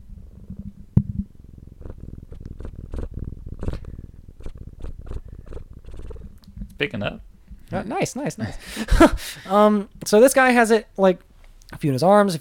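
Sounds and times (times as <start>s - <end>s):
cat purring: 0.0s - 7.8s
speech: 6.8s - 12.4s.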